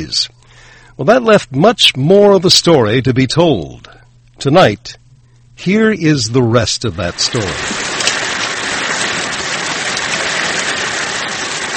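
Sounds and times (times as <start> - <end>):
speech: 0.0 - 0.4, 1.0 - 5.0, 5.6 - 7.8
steady rain falling: 6.9 - 11.7.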